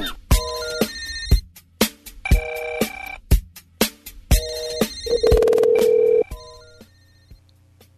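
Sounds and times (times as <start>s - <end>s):
telephone ringing: 2.3s - 3.2s, 4.6s - 7.2s
steady sustained telephone tone: 5.1s - 7.3s.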